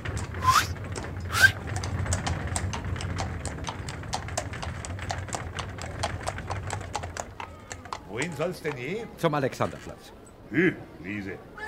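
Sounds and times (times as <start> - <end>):
low continuous rumble: 0.0 - 7.4
hooves of a horse pulling a horse-drawn cab clip-clopping: 0.0 - 10.1
speech: 8.2 - 11.5.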